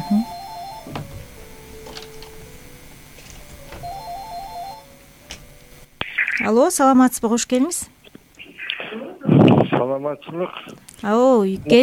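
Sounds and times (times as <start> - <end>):
electronic telephone ring signalling an incoming call: 0.0 - 0.9, 3.8 - 4.9
speech: 6.5 - 8.0, 9.8 - 11.8.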